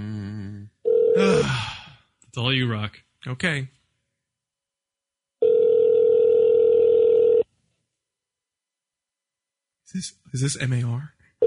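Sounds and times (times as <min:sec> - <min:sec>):
telephone ringing tone over the line: 0:00.8 - 0:01.2, 0:05.4 - 0:07.4
speech: 0:02.4 - 0:03.8, 0:09.9 - 0:11.2.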